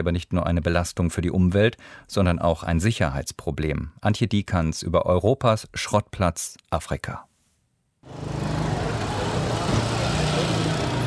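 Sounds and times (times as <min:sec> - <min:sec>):
speech: 0:00.0 - 0:07.3
low engine rumble of idling vehicles at a street intersection in Nairobi: 0:08.1 - 0:11.0
old taxis and cars idling at a street intersection in Nairobi: 0:08.1 - 0:11.0.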